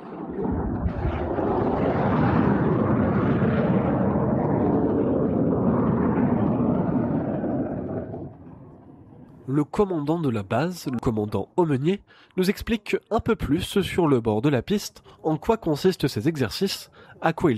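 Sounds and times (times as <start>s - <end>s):
fighter jet roar during practice runway landings: 0.0s - 9.2s
speech: 9.6s - 17.5s.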